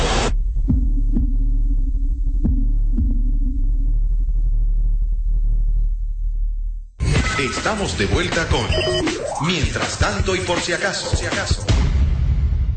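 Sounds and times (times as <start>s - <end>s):
low rumble and hum: 0.0s - 7.0s
heartbeat sound effect thumping: 0.2s - 6.8s
speech: 7.4s - 11.7s.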